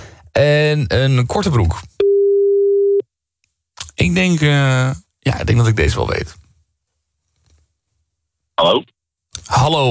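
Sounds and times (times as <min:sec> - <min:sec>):
speech: 0:00.4 - 0:01.9, 0:04.0 - 0:06.4, 0:08.6 - 0:09.8
telephone ringing tone of an outgoing call: 0:02.0 - 0:03.0.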